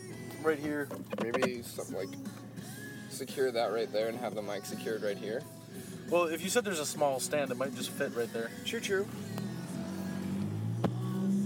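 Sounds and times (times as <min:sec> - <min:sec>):
car driving along in traffic, engine and road hum: 0:00.1 - 0:02.7, 0:07.8 - 0:11.4
speech: 0:00.4 - 0:02.5, 0:03.2 - 0:09.3
sharp click: 0:00.9 - 0:01.5.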